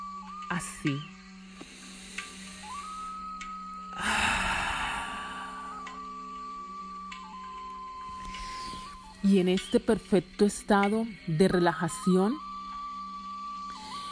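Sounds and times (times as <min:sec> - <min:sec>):
soft steady sustained tone: 0:00.0 - 0:14.1
speech: 0:00.5 - 0:01.2, 0:09.2 - 0:12.5
deep forceful exhale: 0:04.0 - 0:05.8.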